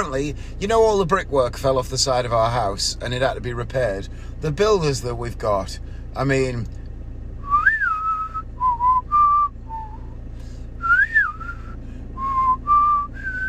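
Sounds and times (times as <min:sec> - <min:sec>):
speech: 0:00.0 - 0:06.8
person whistling a cowboy tune: 0:07.4 - 0:10.2, 0:10.8 - 0:13.4.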